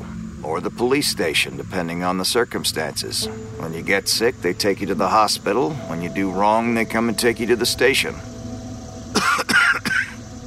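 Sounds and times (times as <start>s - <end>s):
faint hum: 0.0s - 10.4s
speech: 0.5s - 8.3s
person coughing into their shoulder: 9.2s - 10.2s.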